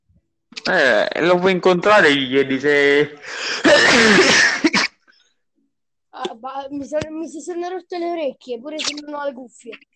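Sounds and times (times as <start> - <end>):
speech: 0.7 - 4.6, 6.7 - 9.9
loud sneeze from allergy: 3.6 - 5.0.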